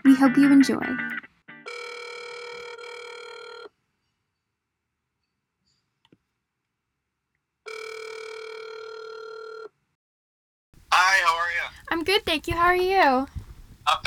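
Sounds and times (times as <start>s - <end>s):
speech: 0.2s - 1.2s, 12.4s - 14.0s
long electronic telephone ring tones: 1.6s - 3.7s, 7.7s - 9.7s
person briefly answering as the telephone call connects: 10.9s - 13.3s.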